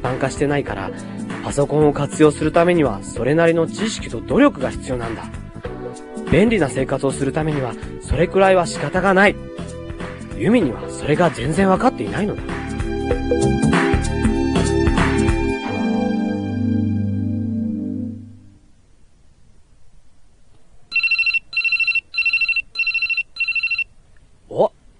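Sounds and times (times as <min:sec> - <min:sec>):
music: 0:00.0 - 0:18.7
speech: 0:00.1 - 0:05.4, 0:06.3 - 0:09.6, 0:10.4 - 0:13.4
telephone ringing in quick electronic bursts: 0:20.9 - 0:23.9.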